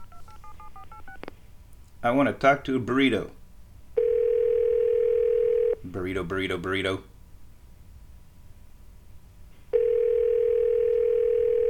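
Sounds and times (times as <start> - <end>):
phone ringing tone on unanswered call: 0.0 - 1.2, 4.0 - 5.8, 9.7 - 11.6
quiet room noise: 0.0 - 11.6
speech: 2.0 - 3.4, 5.9 - 7.1.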